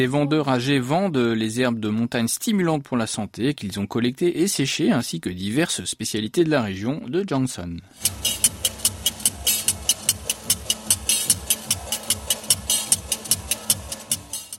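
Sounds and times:
speech: 0.0s - 8.6s
large metal scissors clacking by a candy vendor: 8.0s - 14.5s.

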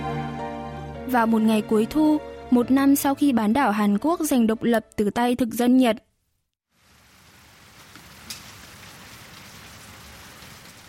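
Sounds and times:
speech: 1.1s - 6.1s
steady rain on a mountainside in Korea on a late autumn day: 6.7s - 10.8s.

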